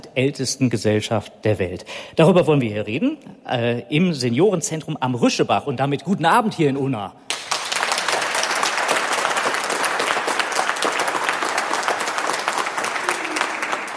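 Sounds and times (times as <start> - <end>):
speech: 0.2 - 7.4
audience applause: 7.3 - 13.9.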